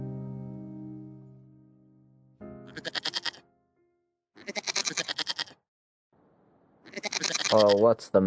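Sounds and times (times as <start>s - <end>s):
goats bleating loudly: 2.7s - 3.4s, 4.4s - 5.5s, 6.9s - 7.9s
speech: 7.7s - 8.2s.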